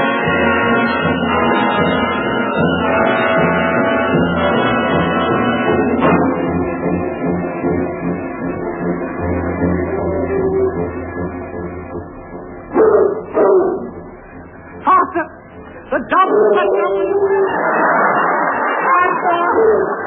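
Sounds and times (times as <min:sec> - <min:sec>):
dense noisy commotion of a chase on Dartmoor: 0:00.0 - 0:20.0
bloodhounds barking in pursuit: 0:12.7 - 0:14.0, 0:16.1 - 0:18.6
laughter: 0:16.5 - 0:20.0.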